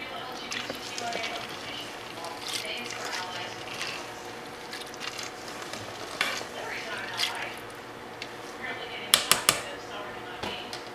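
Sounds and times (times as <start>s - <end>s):
low hum: 0.0s - 10.9s
spoon scraping and clinking around a crock pot while stirring peppers and seasoning: 0.5s - 7.6s.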